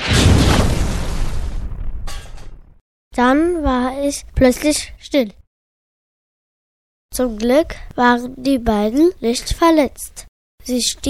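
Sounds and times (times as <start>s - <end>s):
rocket crashing to the ground with bang: 0.0s - 2.8s
scraping clatter: 1.8s - 2.7s
speech: 3.2s - 5.4s, 7.2s - 11.0s.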